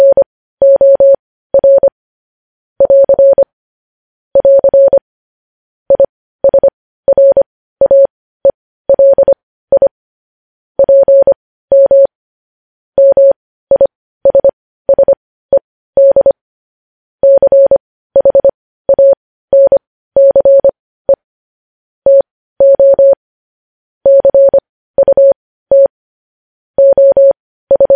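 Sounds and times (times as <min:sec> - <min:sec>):
Morse code beeps in a steady mid-pitched tone: 0:00.0 - 0:01.9, 0:02.8 - 0:03.4, 0:04.4 - 0:05.0, 0:05.9 - 0:08.1, 0:08.9 - 0:09.9, 0:10.8 - 0:12.1, 0:13.0 - 0:16.4, 0:17.2 - 0:21.2, 0:22.1 - 0:23.2, 0:24.1 - 0:25.9, 0:26.8 - 0:27.9.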